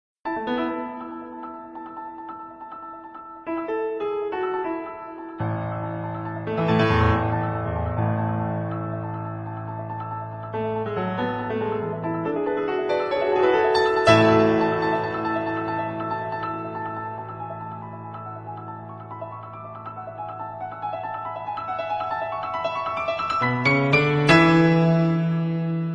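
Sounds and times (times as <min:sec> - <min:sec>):
piano ringtone: 0:00.3 - 0:25.9.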